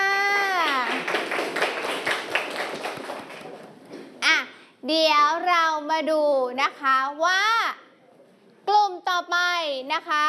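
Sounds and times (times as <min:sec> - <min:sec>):
room full of people applauding: 0:00.3 - 0:03.8
speech: 0:04.9 - 0:07.8, 0:08.7 - 0:10.2.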